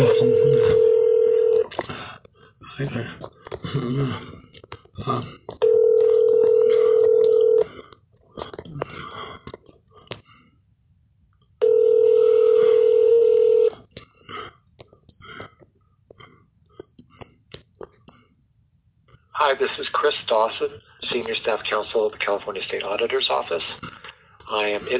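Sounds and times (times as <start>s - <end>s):
telephone ringback tone over a phone line during call transfer: 0.0s - 1.7s, 5.6s - 7.7s, 11.6s - 13.7s
speech: 19.6s - 23.9s, 24.5s - 24.9s.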